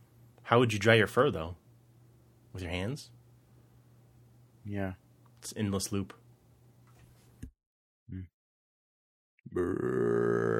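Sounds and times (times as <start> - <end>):
speech: 0.5 - 1.6, 2.6 - 3.2, 4.7 - 6.2, 8.1 - 8.3, 9.5 - 10.5
person burping after drinking soda: 9.5 - 10.5.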